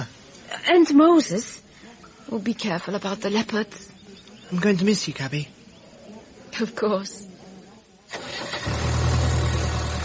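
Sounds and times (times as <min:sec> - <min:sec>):
speech: 0:00.7 - 0:01.6, 0:02.3 - 0:03.9, 0:04.5 - 0:05.6, 0:06.6 - 0:07.3
car engine cranking and idling: 0:08.1 - 0:10.0.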